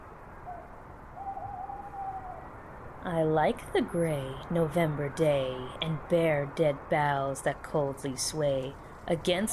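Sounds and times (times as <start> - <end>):
owl hooting: 0.4 - 2.5
speech: 3.0 - 9.5.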